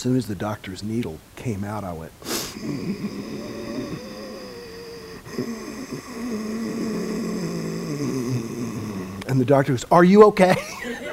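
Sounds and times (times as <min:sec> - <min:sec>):
speech: 0:00.0 - 0:04.2, 0:09.3 - 0:11.0
ujjayi breathing through a constricted throat at a doctor's visit: 0:02.2 - 0:09.3.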